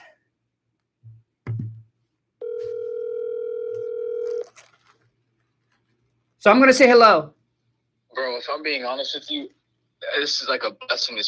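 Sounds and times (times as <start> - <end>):
electronic phone ringing tone: 2.4 - 4.5
speech: 6.4 - 7.4, 8.2 - 11.2.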